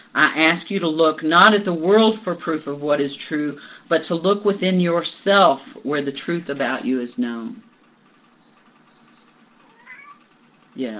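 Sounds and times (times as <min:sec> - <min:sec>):
steady low hum: 0:00.0 - 0:10.9
speech: 0:00.2 - 0:07.7, 0:10.8 - 0:10.9
cat meowing: 0:09.6 - 0:10.3.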